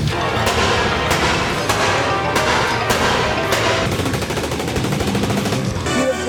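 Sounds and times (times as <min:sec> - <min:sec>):
rapid gunfire: 0:00.1 - 0:06.1.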